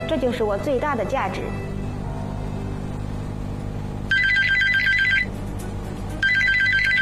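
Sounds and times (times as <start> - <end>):
low steady hum: 0.0 - 7.0
speech: 0.1 - 1.7
telephone ringing in loud trilling bursts on a winter night: 4.1 - 5.4, 6.2 - 7.0.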